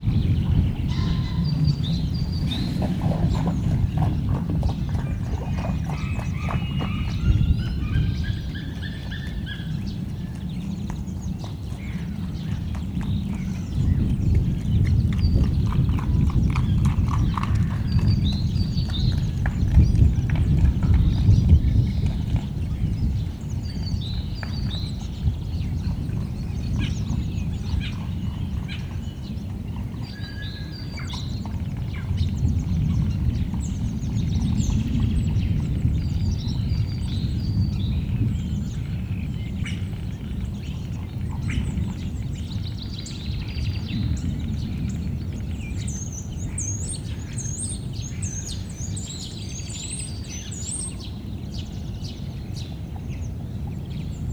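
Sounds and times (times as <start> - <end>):
grey wolf running through mud in windy weather: 0.0 - 38.4
wind: 0.0 - 54.3.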